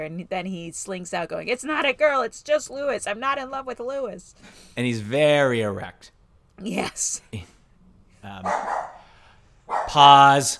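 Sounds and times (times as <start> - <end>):
speech: 0.0 - 7.6, 8.2 - 8.9, 9.7 - 10.5
dog barking: 8.4 - 9.1, 9.7 - 10.0.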